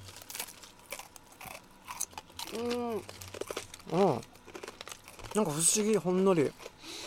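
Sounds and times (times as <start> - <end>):
person chewing a crunchy slightly sweet rice cracker: 0.0 - 7.0
short hummed vocal sound: 2.5 - 3.1
speech: 2.5 - 3.2, 3.9 - 4.3, 5.3 - 6.7.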